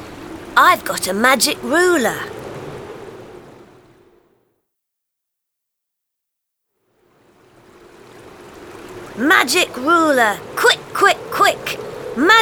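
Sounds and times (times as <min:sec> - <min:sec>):
flowing river water rushing: 0:00.0 - 0:04.2, 0:07.1 - 0:12.4
speech: 0:00.6 - 0:02.4, 0:09.2 - 0:12.4.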